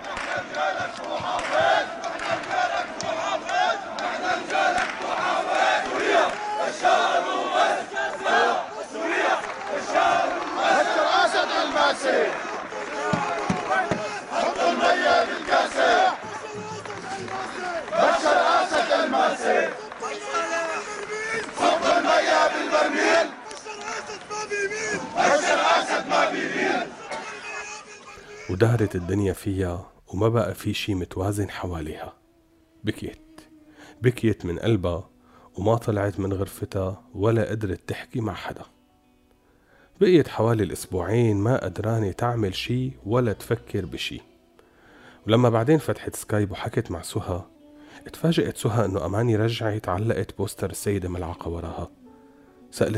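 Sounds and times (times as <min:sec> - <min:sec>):
large crowd chanting political slogans in unison: 0:00.0 - 0:29.1
speech: 0:28.8 - 0:32.2, 0:32.8 - 0:33.2, 0:34.0 - 0:38.8, 0:40.0 - 0:44.3, 0:45.2 - 0:52.0, 0:52.7 - 0:52.9.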